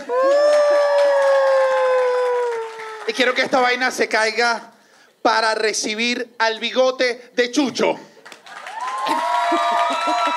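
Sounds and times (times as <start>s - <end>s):
single loud sustained high whoop: 0.0s - 3.0s, 8.7s - 10.3s
live audience cheering: 0.0s - 3.4s, 8.5s - 10.3s
speech: 3.1s - 8.1s, 9.1s - 10.3s.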